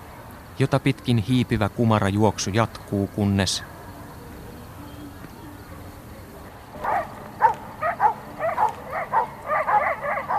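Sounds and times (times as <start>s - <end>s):
speech: 0.6s - 3.8s
dogs barking on the United States side of a border: 6.8s - 10.3s.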